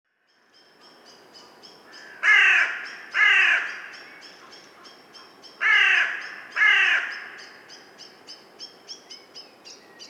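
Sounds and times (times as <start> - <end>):
Corvus corone carrion crow giving loud raspy caws: 1.9 - 4.6, 5.6 - 7.6.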